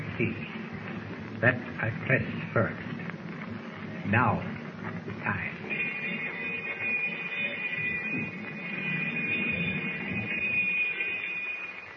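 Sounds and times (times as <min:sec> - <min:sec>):
speech: 0:00.2 - 0:00.5, 0:01.4 - 0:02.9, 0:04.0 - 0:04.6, 0:05.2 - 0:05.6
alarm bell ringing on a submarine: 0:05.6 - 0:11.9.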